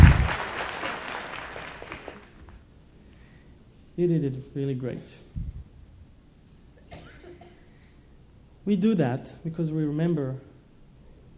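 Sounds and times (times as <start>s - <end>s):
crowd applauding after reciting the ten plagues: 0.0s - 2.4s
speech: 4.0s - 5.5s, 8.7s - 10.5s.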